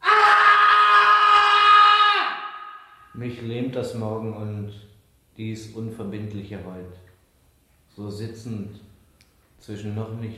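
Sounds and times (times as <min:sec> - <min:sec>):
man screaming at night: 0:00.0 - 0:03.1
speech: 0:03.2 - 0:07.0, 0:08.0 - 0:08.9, 0:09.6 - 0:10.3.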